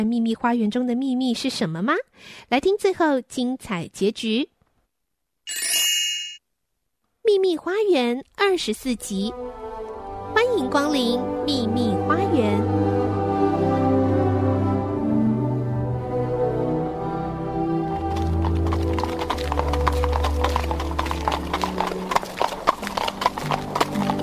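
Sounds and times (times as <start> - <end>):
speech: 0.0 - 4.5, 5.5 - 5.8, 7.3 - 9.7, 10.4 - 12.9
sustained music: 8.6 - 24.2
hoof clip-clop of a horse-drawn carriage crossing the moor: 17.9 - 24.2.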